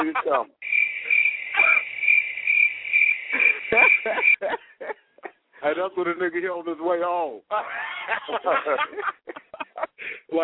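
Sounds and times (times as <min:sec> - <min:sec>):
laughter: 0:00.0 - 0:00.5, 0:03.3 - 0:05.4, 0:07.5 - 0:10.2
speech: 0:00.0 - 0:00.7, 0:03.8 - 0:05.0, 0:05.6 - 0:09.4
crickets chirping at night: 0:00.6 - 0:04.5.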